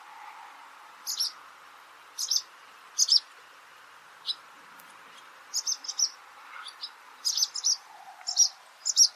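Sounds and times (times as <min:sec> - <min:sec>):
faint steady hum: 0:00.0 - 0:09.1
barn swallow chirping: 0:01.0 - 0:01.4, 0:02.2 - 0:03.3, 0:05.2 - 0:09.1.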